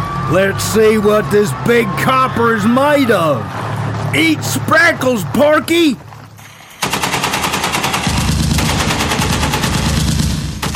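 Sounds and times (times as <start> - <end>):
speech: 0.3 - 6.1
rapid high-caliber gunfire: 6.8 - 10.7.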